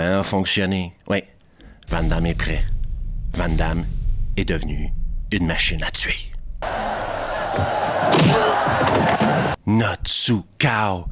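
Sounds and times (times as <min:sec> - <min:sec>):
speech: 0:00.1 - 0:01.3, 0:01.9 - 0:02.7, 0:03.3 - 0:06.8, 0:07.6 - 0:11.1
heavy thud: 0:01.6 - 0:09.6
dense frenzied crowd shouting and roaring: 0:06.6 - 0:09.6.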